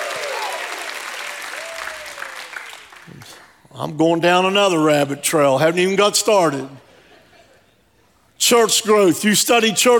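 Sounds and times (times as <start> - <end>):
scattered shouts and whoops: 0.0 - 2.5
church audience clapping in praise: 0.0 - 3.6
speech: 3.2 - 6.9, 8.4 - 9.9.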